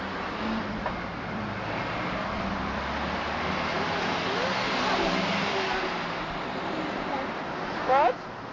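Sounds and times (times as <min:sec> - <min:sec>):
roadside traffic rumble of passing cars: 0:00.0 - 0:08.5.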